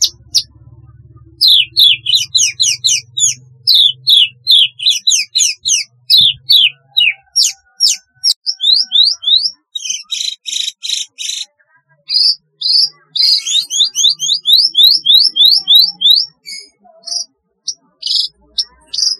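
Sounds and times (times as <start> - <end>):
low hum: 0.0 - 7.2
Javan bush lark song: 0.0 - 19.1.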